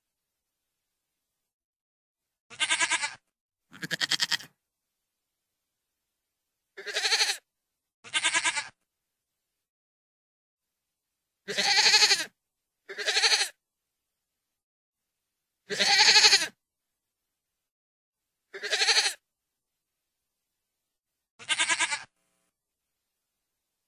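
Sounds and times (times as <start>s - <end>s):
goat bleating: 2.5s - 4.5s, 6.8s - 7.4s, 8.0s - 8.8s, 11.5s - 12.3s, 12.9s - 13.6s, 15.7s - 16.6s, 18.5s - 19.2s, 21.4s - 22.1s.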